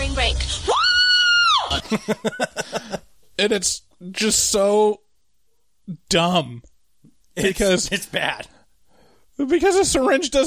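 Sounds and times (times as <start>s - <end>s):
person imitating a long high scream of agony: 0.7s - 1.8s
breathy laughter: 1.7s - 3.1s
speech: 1.9s - 5.0s, 5.9s - 6.7s, 7.4s - 8.6s, 9.4s - 10.4s.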